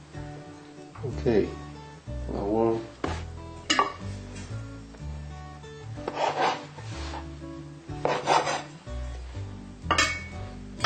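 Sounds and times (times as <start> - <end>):
speech: 1.0 - 1.6, 2.3 - 2.9
knife cutting cooked food into pieces on a board: 6.0 - 7.3, 8.0 - 8.7
utensils clinking against a bowl: 9.9 - 10.8.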